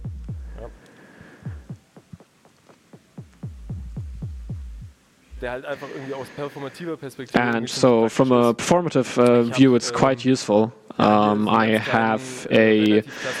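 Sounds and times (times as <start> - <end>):
compact drum machine playing deep punchy electronic kicks with tails: 0.0 - 5.6
DJ-style filter sweep opening into a brighter buzzy burst: 0.0 - 6.4
speech: 5.4 - 13.3.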